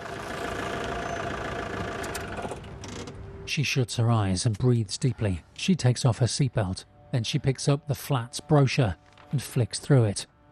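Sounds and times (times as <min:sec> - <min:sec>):
car engine idling on the roof of a multi-storey car park: 0:00.0 - 0:02.7
speech: 0:03.5 - 0:10.3.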